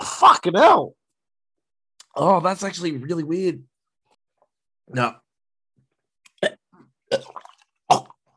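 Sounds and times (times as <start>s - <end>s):
speech: 0.2s - 1.0s, 2.1s - 3.7s, 4.9s - 5.2s
person gagging and retching after sipping apple cider vinegar: 6.3s - 8.3s.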